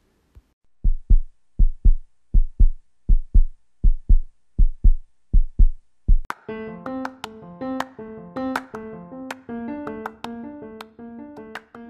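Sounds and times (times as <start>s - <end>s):
deep booming drum beating in heartbeat rhythm: 0.8s - 6.3s.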